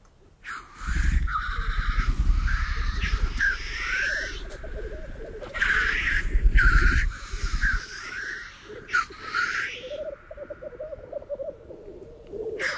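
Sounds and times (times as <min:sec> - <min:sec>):
black grouse bubbling and cooing at a lek: 0:00.2 - 0:12.7.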